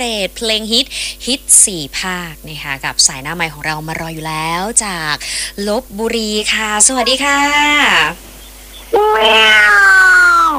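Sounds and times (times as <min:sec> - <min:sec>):
speech: 0:00.0 - 0:08.3, 0:08.9 - 0:10.5
cat meowing: 0:07.0 - 0:08.1, 0:08.9 - 0:10.5.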